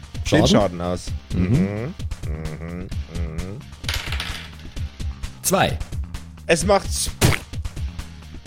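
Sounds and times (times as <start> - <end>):
speech: 0.3 - 3.7, 5.5 - 7.3
small hard objects clattering across a surface: 3.8 - 4.8.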